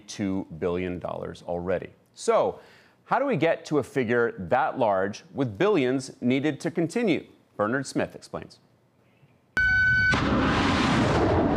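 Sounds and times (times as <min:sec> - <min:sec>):
speech: 0:00.1 - 0:08.7
SM-3 interceptor rocket launch: 0:09.6 - 0:11.5.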